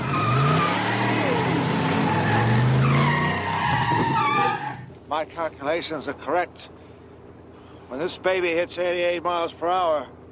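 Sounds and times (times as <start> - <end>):
remote-controlled car tires skidding and squealing: 0.0 - 5.0
speech: 5.1 - 6.8, 7.9 - 10.2.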